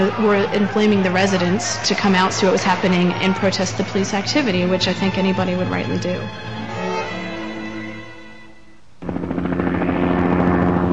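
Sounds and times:
speech: 0:00.1 - 0:06.5
low steady drone: 0:03.7 - 0:10.9
loud helicopter rotor chop: 0:09.0 - 0:10.9.

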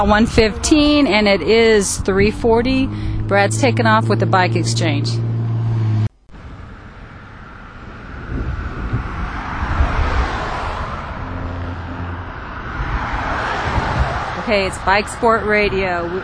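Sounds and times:
speech: 0:00.0 - 0:05.3, 0:14.5 - 0:16.2
gusty wind buffeting the microphone: 0:00.0 - 0:16.2
traffic passing outdoors: 0:00.0 - 0:16.2.

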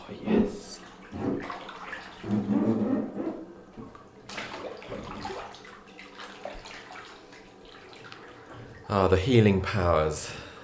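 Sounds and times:
bathwater gently lapping: 0:00.0 - 0:09.4
bathwater sloshing as a cyclist lowers into a hot tub: 0:00.0 - 0:10.6
bathwater splashing: 0:00.1 - 0:02.6, 0:03.8 - 0:09.2
speech: 0:08.9 - 0:10.4.

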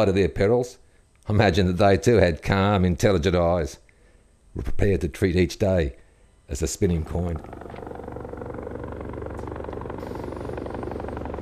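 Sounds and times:
speech: 0:00.0 - 0:03.8, 0:04.5 - 0:08.2
helicopter rotor chopping: 0:06.8 - 0:11.4.

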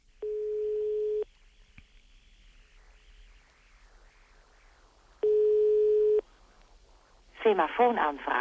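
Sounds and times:
faint telephone line hiss: 0:00.0 - 0:08.3
buzzy telephone ringing tones of a call to a pager: 0:00.2 - 0:01.3, 0:05.2 - 0:06.2.

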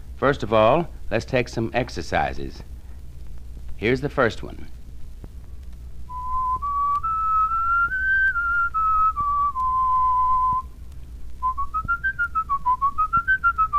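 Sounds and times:
speech: 0:00.2 - 0:02.7, 0:03.8 - 0:04.8
person whistling a clear plain tone: 0:06.1 - 0:10.7, 0:11.4 - 0:13.7.

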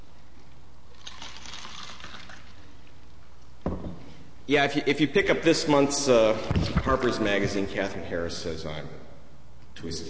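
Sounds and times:
drink pouring into a glass: 0:00.9 - 0:02.8
soft knock: 0:03.6 - 0:04.0
speech: 0:04.5 - 0:09.0, 0:09.8 - 0:10.0.

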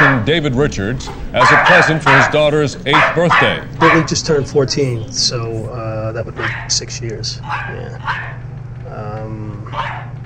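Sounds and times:
small excitable female dog yelping and barking: 0:00.0 - 0:00.3, 0:01.4 - 0:04.2, 0:06.4 - 0:06.8, 0:07.4 - 0:08.4, 0:09.7 - 0:10.2
speech: 0:00.2 - 0:10.0.

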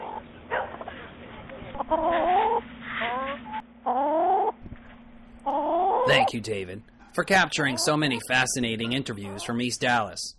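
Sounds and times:
chickens clucking and squawking: 0:00.0 - 0:04.6, 0:05.4 - 0:06.4, 0:07.2 - 0:10.1
steady low hum: 0:00.0 - 0:10.3
speech: 0:01.9 - 0:02.4, 0:06.1 - 0:10.3.

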